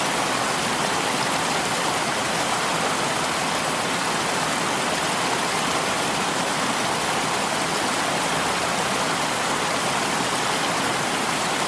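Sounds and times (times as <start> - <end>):
rushing water: 0.0 - 11.6.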